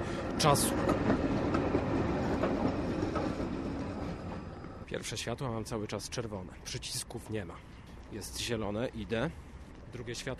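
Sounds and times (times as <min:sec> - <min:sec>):
tram wheels clanking on rails: 0:00.0 - 0:05.3
tram passing at a street intersection: 0:00.0 - 0:10.3
speech: 0:00.4 - 0:01.2, 0:05.0 - 0:10.3.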